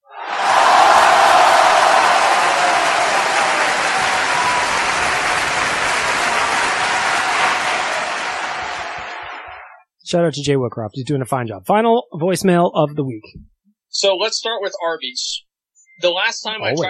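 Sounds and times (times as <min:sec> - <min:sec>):
faint crowd cheering: 0:00.0 - 0:09.8
crowd applause sound effect: 0:00.1 - 0:09.8
speech: 0:10.1 - 0:15.4, 0:16.0 - 0:16.8.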